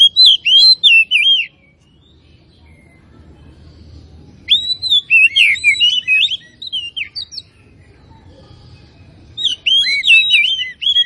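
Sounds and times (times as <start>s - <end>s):
Oriental magpie-robin singing vigorously with sweet whistles and chirps: 0.0s - 3.1s, 4.3s - 7.6s, 9.3s - 11.0s
faint low hum: 1.4s - 11.0s.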